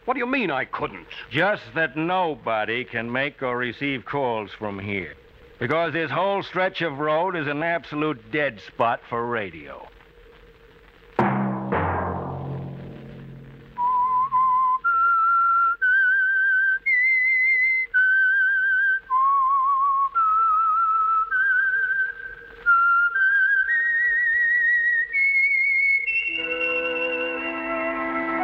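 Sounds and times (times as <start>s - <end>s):
speech: 0.1s - 9.9s
struck chords: 11.2s - 14.1s
lone whistler whistling a radio program theme tune: 13.8s - 28.4s.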